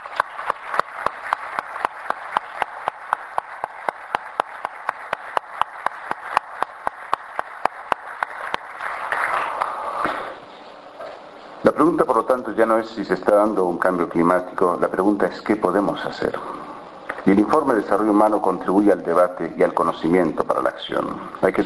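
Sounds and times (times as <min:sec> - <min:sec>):
audience applauding scientists: 0:00.0 - 0:10.2
speech: 0:11.8 - 0:16.6, 0:17.3 - 0:21.6.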